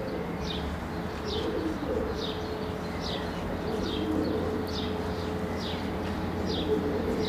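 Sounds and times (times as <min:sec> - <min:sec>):
pigeons cooing: 0:00.0 - 0:07.2.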